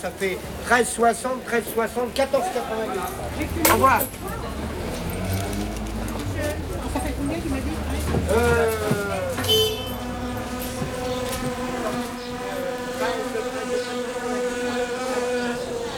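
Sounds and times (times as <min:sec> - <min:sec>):
speech: 0:00.0 - 0:04.6, 0:08.2 - 0:08.8
wasps buzzing: 0:03.0 - 0:15.9.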